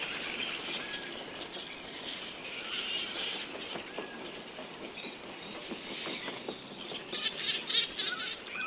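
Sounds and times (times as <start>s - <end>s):
grey-headed flying fox colony squeaking and screeching at twilight in a regional park in Sydney, Australia: 0.0s - 8.6s.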